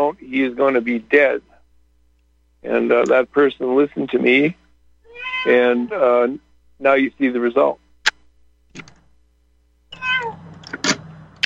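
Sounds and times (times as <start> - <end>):
speech: 0.0 - 1.5, 2.6 - 4.6, 5.4 - 7.8
cat meowing: 5.0 - 6.0, 9.9 - 10.4
sharp clicks: 10.6 - 11.4.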